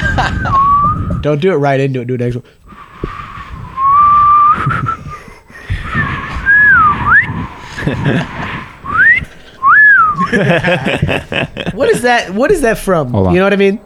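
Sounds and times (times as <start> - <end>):
person whistling a short tune: 0.0 - 1.3, 3.1 - 10.3
laughter: 0.0 - 1.4, 2.7 - 13.8
breathy windy background: 0.0 - 13.8
speech: 1.2 - 3.1, 7.9 - 8.4, 10.2 - 13.8.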